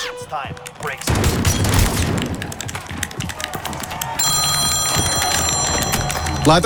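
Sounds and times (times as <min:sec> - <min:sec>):
clattering game-like sounds: 0:00.2 - 0:06.6
phone with high electronic ringtone ringing: 0:04.2 - 0:06.6
speech: 0:06.5 - 0:06.6.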